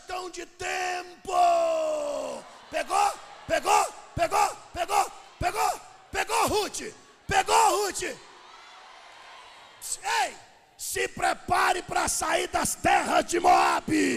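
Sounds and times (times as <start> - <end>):
speech: 0.2 - 1.6, 2.7 - 5.6, 6.5 - 8.3, 9.9 - 14.1
audience shouting together in rhythmic bursts: 1.3 - 10.5.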